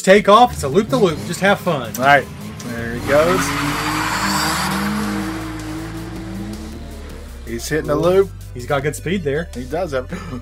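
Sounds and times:
speech: 0.0 - 3.9, 7.5 - 10.3
test car engine roaring: 0.0 - 8.8
test car tires squealing: 0.1 - 8.2.

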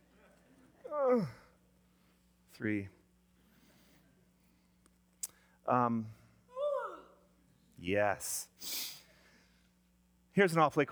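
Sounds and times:
faint steady hum: 0.0 - 10.9
children yawning aloud: 0.9 - 1.5, 6.5 - 7.2
speech: 1.1 - 1.4, 2.6 - 3.0, 5.7 - 6.2, 7.8 - 9.0, 10.4 - 10.9.

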